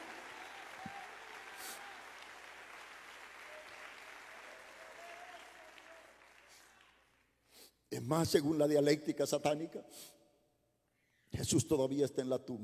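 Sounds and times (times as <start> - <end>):
audience applauding: 0.0 - 7.3
speech: 8.0 - 10.2, 11.4 - 12.6.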